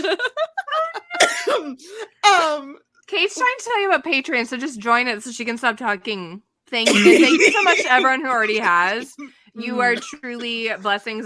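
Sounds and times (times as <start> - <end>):
laughter: 0.0 - 1.2, 6.9 - 9.2
harsh noisy cough: 1.1 - 2.0, 6.8 - 10.8
speech: 3.1 - 11.2.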